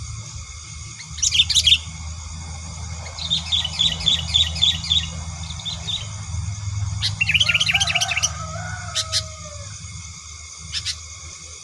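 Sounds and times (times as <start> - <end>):
constant high-pitched hum: 0.0 - 11.6
Sooty-headed bulbul chattering and singing: 0.7 - 11.6.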